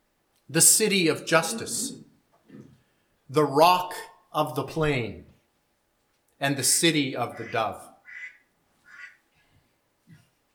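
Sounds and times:
speech: 0:00.5 - 0:02.1, 0:03.3 - 0:05.3, 0:06.4 - 0:07.9
duck quacking: 0:07.3 - 0:09.2.

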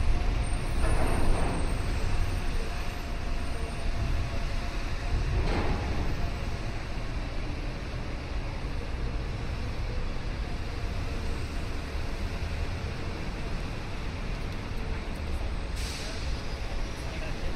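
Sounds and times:
dense city rumble of rail or road traffic in downtown Chicago: 0:00.0 - 0:17.5.

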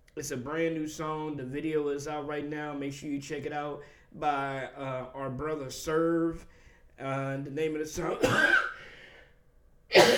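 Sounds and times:
speech: 0:00.2 - 0:08.7
sharp harsh cough: 0:08.1 - 0:08.9, 0:09.9 - 0:10.1.

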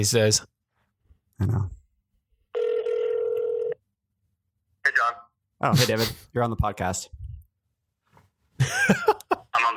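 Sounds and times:
speech: 0:00.0 - 0:00.5, 0:01.4 - 0:01.8, 0:05.6 - 0:07.2, 0:08.6 - 0:09.2
steady electronic ring tone from a mobile phone: 0:02.6 - 0:03.8.

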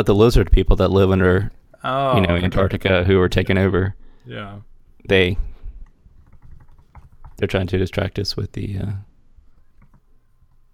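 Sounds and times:
speech: 0:00.0 - 0:05.5, 0:07.4 - 0:09.1
typing on a laptop keyboard: 0:05.8 - 0:07.6, 0:09.5 - 0:10.7.

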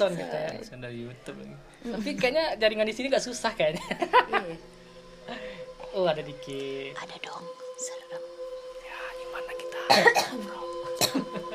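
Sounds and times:
speech: 0:00.0 - 0:08.3
laughter: 0:03.7 - 0:04.6, 0:11.2 - 0:11.5
person coughing: 0:09.9 - 0:11.5.

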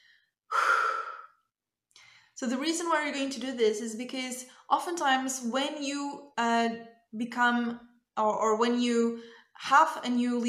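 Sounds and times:
big deep breath: 0:00.0 - 0:01.4
speech: 0:02.4 - 0:10.4.

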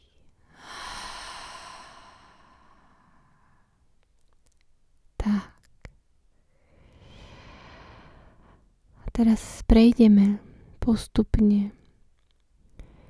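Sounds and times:
slow deep breathing during a guided relaxation breathing exercise: 0:00.4 - 0:03.8, 0:06.4 - 0:08.7, 0:12.7 - 0:13.0
speech: 0:09.2 - 0:11.8.

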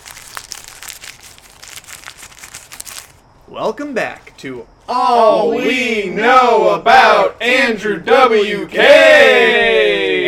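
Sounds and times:
paper being folded and crinkled: 0:00.0 - 0:03.2
speech: 0:03.5 - 0:10.0.

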